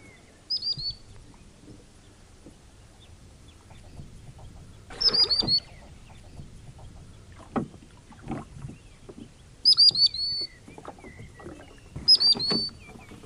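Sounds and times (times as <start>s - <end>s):
rowing noise on a lake: 1.1s - 9.4s, 10.5s - 13.2s
common sandpiper piping: 2.9s - 7.5s, 9.6s - 13.2s.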